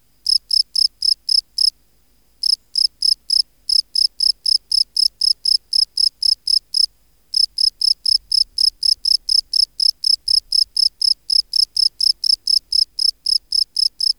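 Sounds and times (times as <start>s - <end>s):
Gryllus campestris field cricket chirping: 0.2s - 14.1s.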